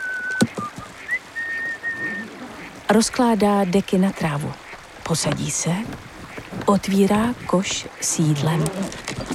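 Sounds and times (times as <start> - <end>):
person whistling a simple tune: 0.0 - 2.2
speech: 2.9 - 6.1, 6.7 - 9.0.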